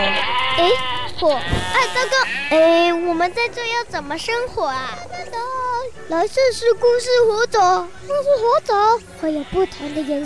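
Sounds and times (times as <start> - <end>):
sheep bleating in a video game: 0.0 - 3.2, 9.2 - 10.2
speech: 0.6 - 10.2.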